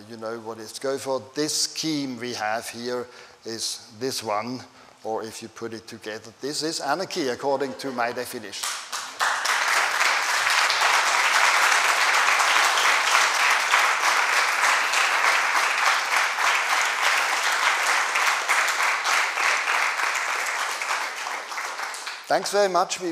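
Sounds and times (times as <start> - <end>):
speech: 0.1 - 8.8, 22.3 - 23.1
large audience applauding: 8.6 - 22.6.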